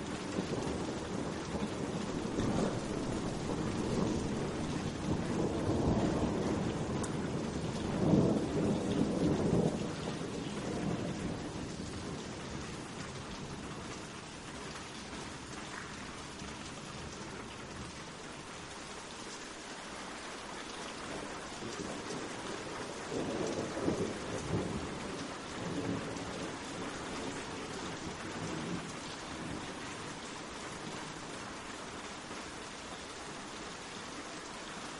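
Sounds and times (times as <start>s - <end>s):
low thunder rumbling: 0.0s - 13.7s, 21.1s - 31.2s
rain falling gently on leaves: 0.0s - 34.9s.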